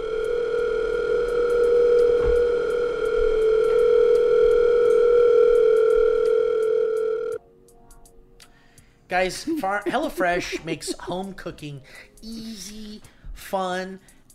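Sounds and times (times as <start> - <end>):
telephone ringing with a steady electronic tone: 0.0 - 7.4
speech: 9.1 - 14.2
laughter: 9.2 - 11.4.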